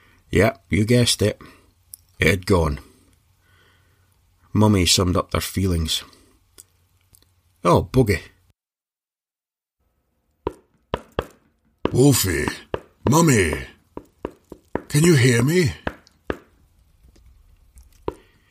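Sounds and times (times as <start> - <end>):
speech: 0.3 - 1.6, 2.2 - 2.9, 4.5 - 6.2, 7.6 - 8.3, 11.9 - 13.7, 14.9 - 15.8
fist banging on a solid wall: 10.5 - 12.9, 15.9 - 16.5.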